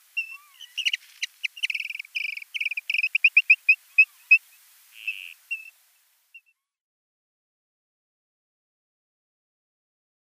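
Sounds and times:
Eurasian dotterel display call with trilled bursts and high notes: 0.2s - 5.8s.

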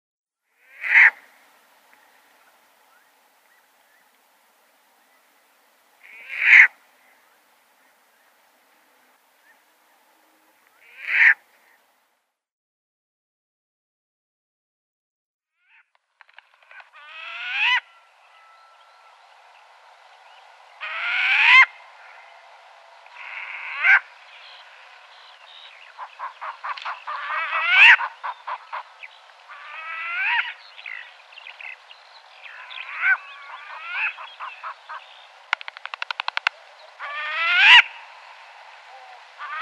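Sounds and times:
Short-eared Owl calls: 0.6s - 4.2s, 6.0s - 8.3s, 9.4s - 11.8s, 16.6s - 19.8s, 20.7s - 39.6s.

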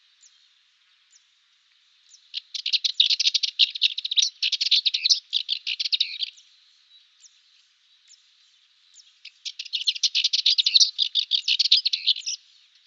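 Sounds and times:
Cyprus warbler harsh buzzy rattling chatter: 2.3s - 6.4s, 9.2s - 12.8s.

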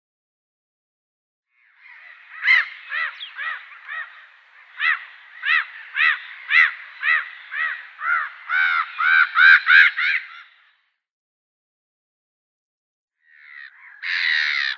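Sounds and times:
Black-headed Gull harsh calls: 1.6s - 10.7s, 13.2s - 14.7s.

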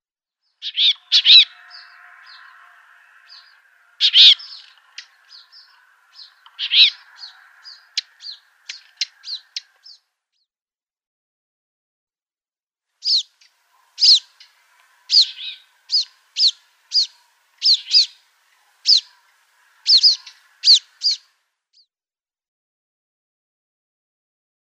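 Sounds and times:
Palestine Sunbird calls: 0.6s - 10.0s, 13.0s - 21.4s.

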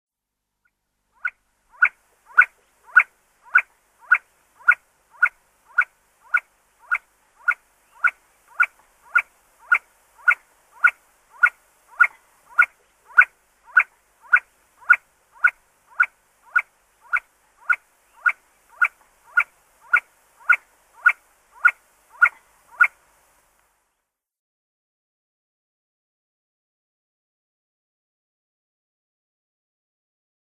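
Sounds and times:
male See-see Partridge display: 1.2s - 23.0s.

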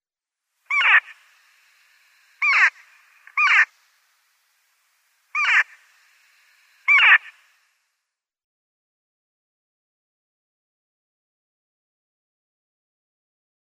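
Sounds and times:
Daurian Jackdaw calling: 0.7s - 7.8s.

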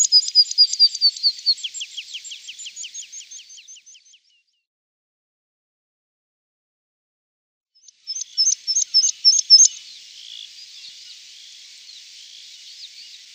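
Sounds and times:
meadow pipit song: 0.0s - 4.5s, 7.8s - 13.3s.

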